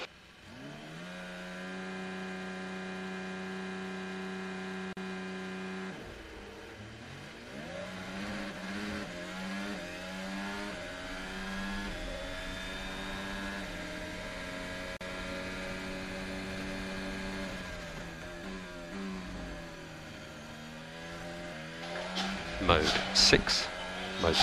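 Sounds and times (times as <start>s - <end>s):
racing car engine approaching the starting grid: 0.0s - 24.4s
speech: 22.7s - 24.4s.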